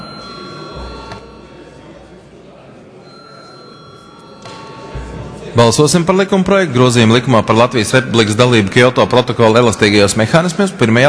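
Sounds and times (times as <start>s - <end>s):
electric bell ringing in a parliament chamber before a vote: 0.0s - 1.9s, 3.0s - 5.4s
speech: 5.6s - 11.0s.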